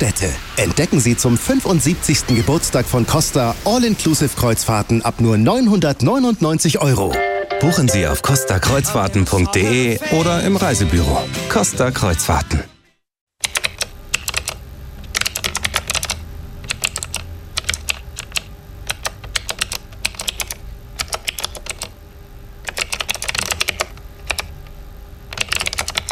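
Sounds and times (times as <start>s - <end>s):
speech: 0.0s - 12.7s
typing on a computer keyboard: 13.4s - 22.0s, 22.6s - 24.5s, 25.3s - 26.0s.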